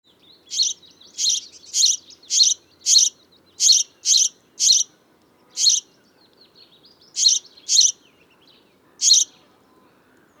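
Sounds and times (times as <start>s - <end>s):
House sparrow Passer domesticus chirping: 0.4s - 4.9s, 5.5s - 5.9s, 7.0s - 8.1s, 9.0s - 9.4s.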